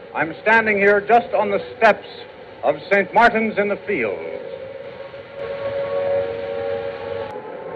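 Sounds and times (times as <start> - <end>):
air raid sirens wailing: 0.0 - 7.7
faint traffic rumble: 0.0 - 7.7
speech: 0.1 - 4.4.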